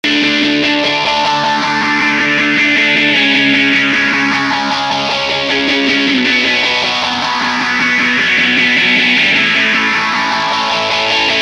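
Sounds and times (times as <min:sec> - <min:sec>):
guitar with phaser effect: 0:00.0 - 0:11.4.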